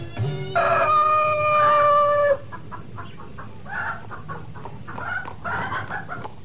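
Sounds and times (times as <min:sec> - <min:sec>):
higher crow-like call: 0:00.2 - 0:02.5
chickens clucking and squawking: 0:00.2 - 0:06.4.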